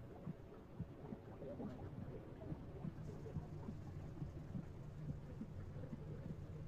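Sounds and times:
heartbeat heard from inside the womb: 0.0s - 6.6s.

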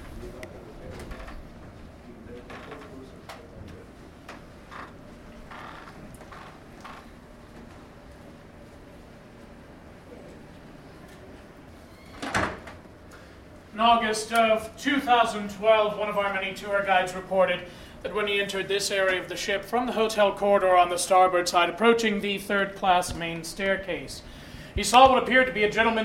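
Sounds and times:
creaky door at the bow of a ship opening and closing: 0.8s - 1.4s, 2.3s - 3.0s, 4.6s - 7.2s, 11.8s - 12.8s
speech: 13.8s - 26.0s.

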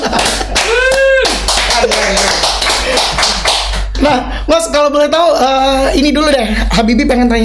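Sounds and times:
people clapping: 0.0s - 4.2s
voice calling out with a rising whoop: 0.6s - 2.1s
speech: 4.1s - 7.4s.

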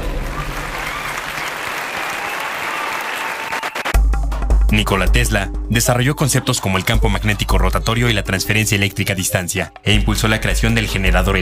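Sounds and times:
crowd applauding: 0.0s - 4.0s
speech: 4.7s - 11.4s.

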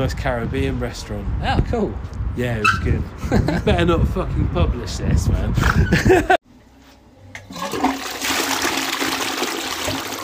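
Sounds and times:
speech: 0.0s - 6.4s
toilet flushing in public toilets: 7.5s - 10.2s.

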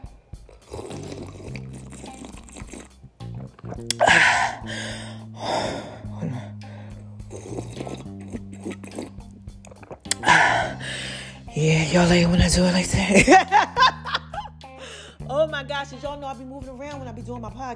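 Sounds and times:
slurping sips of tea: 0.4s - 11.5s
speech: 3.8s - 5.9s, 11.6s - 13.7s, 15.8s - 17.7s
breathy exhale after drinking tea: 4.0s - 7.3s, 10.2s - 11.5s, 14.8s - 15.2s.

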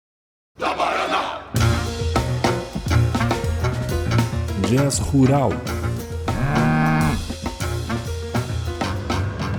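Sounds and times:
rhythmic music with percussive hits: 1.6s - 9.5s
speech: 4.7s - 5.8s
cow mooing: 6.3s - 7.3s.

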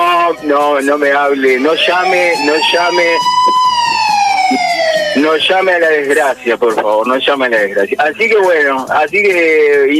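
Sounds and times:
loud emergency siren wailing: 0.0s - 6.9s
speech: 0.4s - 3.6s, 4.5s - 9.9s.

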